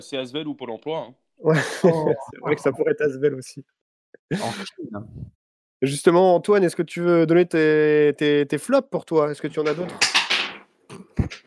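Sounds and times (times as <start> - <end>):
speech: 0.0 - 10.2, 10.9 - 11.4
laughter: 1.4 - 3.1, 4.3 - 4.7
object knocked over by a cat clattering: 9.6 - 10.7.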